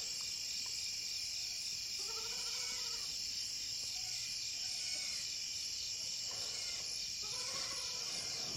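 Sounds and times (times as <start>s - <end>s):
crickets chirping at night: 0.0s - 8.5s
soft animal bleats: 2.0s - 3.1s, 4.0s - 5.3s, 6.3s - 8.5s.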